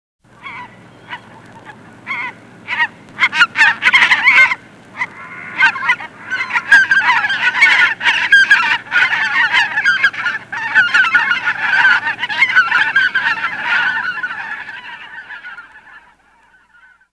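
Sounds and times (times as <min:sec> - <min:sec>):
geese: 0:00.3 - 0:17.1.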